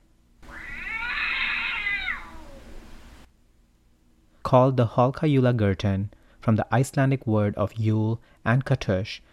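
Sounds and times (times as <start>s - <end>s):
cat meowing and yowling: 0.4s - 2.8s
speech: 4.5s - 9.3s.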